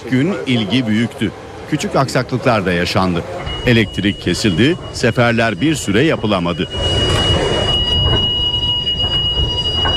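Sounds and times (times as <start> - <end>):
speech: 0.0 - 7.0
commuter train rumbling through an underground station: 0.0 - 9.9
commuter train wheel squeal: 3.4 - 9.9.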